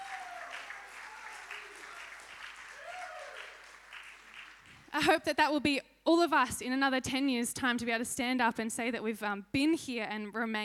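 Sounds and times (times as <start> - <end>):
congregation applauding with dense clapping: 0.0 - 4.9
speech: 5.0 - 10.6.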